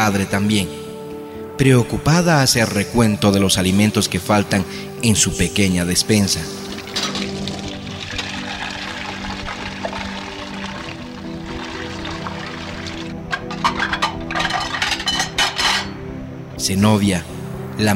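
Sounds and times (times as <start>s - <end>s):
speech: 0.0s - 0.8s, 1.6s - 7.3s, 16.7s - 17.9s
running water splashing while washing cups: 6.7s - 13.7s
cups knocking and clinking: 6.8s - 8.5s, 13.3s - 16.0s.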